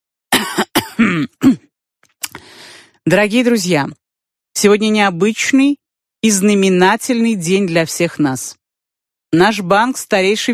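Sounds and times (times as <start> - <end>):
man clearing his throat before addressing reporters: 0.4 - 1.7
speech: 1.0 - 1.6, 3.1 - 4.0, 4.6 - 8.6, 9.3 - 10.5.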